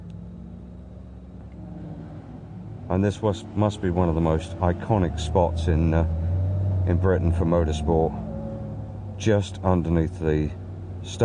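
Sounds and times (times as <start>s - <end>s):
racing car engine rumbling as it launches toward the start line at a British motorsport venue: 0.0s - 11.2s
speech: 2.9s - 6.2s, 6.9s - 8.2s, 9.2s - 11.2s.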